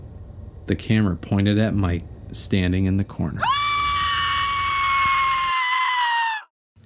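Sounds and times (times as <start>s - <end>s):
low rumble: 0.0s - 3.2s
speech: 0.7s - 3.6s
woman screaming in a horror film: 3.4s - 6.5s.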